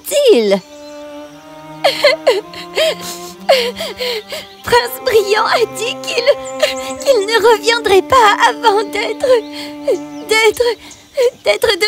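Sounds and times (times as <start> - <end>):
steady held tones: 0.0 - 11.1
speech: 0.3 - 0.8, 2.0 - 11.8
young girl crying with whimpers and sobs: 1.7 - 10.7.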